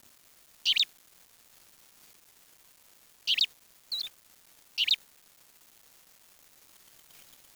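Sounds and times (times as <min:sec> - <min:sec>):
sharp high bird calls: 0:03.3 - 0:04.1.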